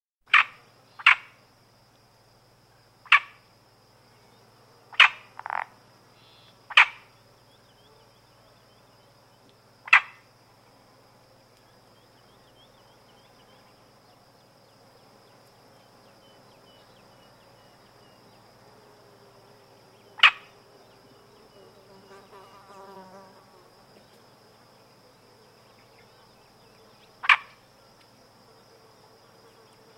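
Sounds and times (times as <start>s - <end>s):
adult male Iberian marsh frog croaking: 0.3s - 1.4s, 3.0s - 3.4s, 4.9s - 7.2s, 9.8s - 10.3s, 20.2s - 20.6s, 27.2s - 27.6s.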